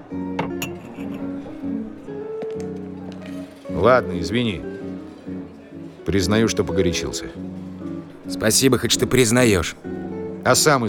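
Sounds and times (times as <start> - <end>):
glasses of beer clinking as they are served: 0.2 - 3.9
speech: 3.8 - 4.7, 6.1 - 7.5, 8.3 - 10.8.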